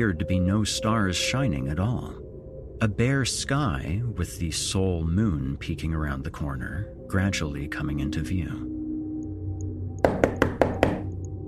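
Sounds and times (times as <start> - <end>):
speech: 0.0 - 2.2, 2.8 - 8.8
heavy knocks pounding on a door: 10.0 - 11.1.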